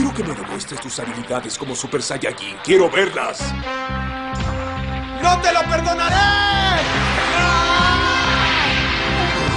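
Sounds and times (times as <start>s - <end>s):
speech: 0.2s - 8.4s
anime character's strained battle scream: 6.1s - 9.4s.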